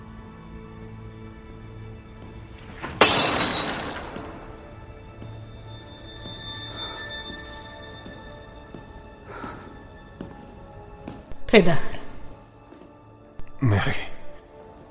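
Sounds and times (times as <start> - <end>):
tea glass dropping and shattering: 2.8 - 4.6
tea glass fragments tinkling: 3.0 - 4.4
speech: 11.5 - 11.9.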